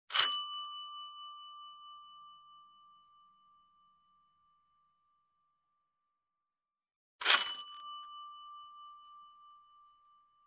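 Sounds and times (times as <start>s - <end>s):
old doorbell: 0.1s - 4.2s, 7.2s - 10.4s.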